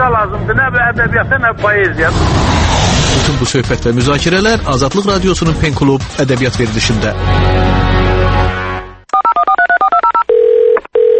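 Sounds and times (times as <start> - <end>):
speech: 0.0 - 8.1
brief wash of noise: 2.1 - 3.4
telephone keypad beeps dialing a number: 9.1 - 11.1.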